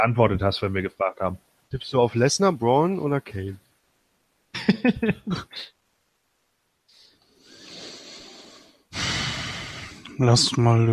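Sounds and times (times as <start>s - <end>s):
speech: 0.0s - 3.6s, 4.5s - 5.8s, 10.2s - 10.9s
laughter: 4.6s - 5.5s
person breathing into the microphone: 6.9s - 10.1s.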